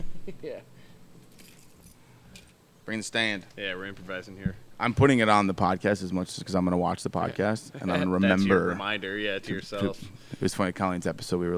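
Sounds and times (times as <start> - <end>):
speech: 0.4 - 0.8, 2.9 - 11.5
keys jingling: 1.2 - 2.6
laughter: 7.7 - 9.0.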